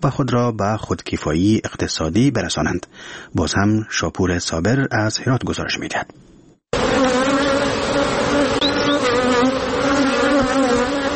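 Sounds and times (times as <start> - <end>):
speech: 0.0 - 6.3
honeybees buzzing around their hives: 6.8 - 11.1
individual honeybees whirring past: 6.8 - 11.1.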